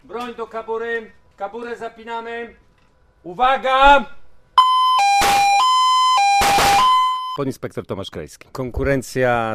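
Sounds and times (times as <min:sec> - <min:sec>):
speech: 0:00.1 - 0:02.6, 0:03.2 - 0:04.2, 0:07.4 - 0:09.5
electronic start signal two-tone beep at a police shooting competition: 0:04.6 - 0:07.4.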